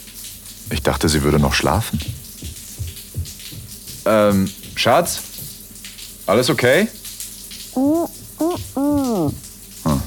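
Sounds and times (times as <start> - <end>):
shower water running: 0.0 - 10.0
speech: 0.8 - 2.2, 4.1 - 5.3, 6.3 - 7.0, 7.8 - 8.1
person calling out short phrases at range: 7.8 - 10.0.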